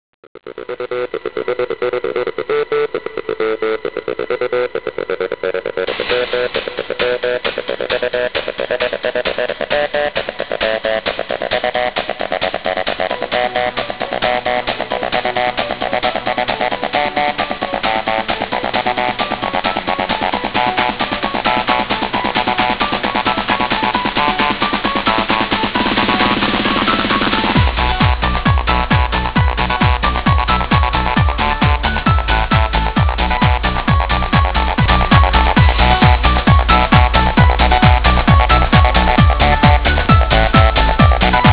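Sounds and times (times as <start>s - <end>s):
club music: 0.4s - 41.5s.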